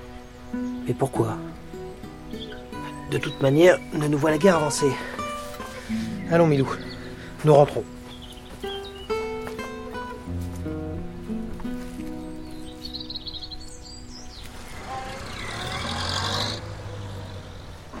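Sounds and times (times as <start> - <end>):
faint bird chirps: 0.0 - 17.9
speech: 0.5 - 1.6, 3.1 - 5.2, 5.9 - 8.0
car engine humming and revving as the car drives away: 14.5 - 17.9.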